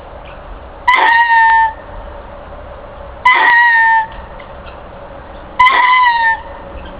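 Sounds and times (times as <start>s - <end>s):
short lemur call: 0.9s - 1.8s, 3.2s - 4.8s, 5.6s - 6.9s.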